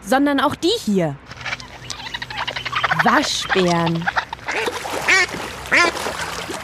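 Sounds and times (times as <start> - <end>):
speech: 0.1 - 1.4, 3.0 - 4.2
ducks quacking: 1.3 - 6.6
faint water splash: 2.5 - 6.6.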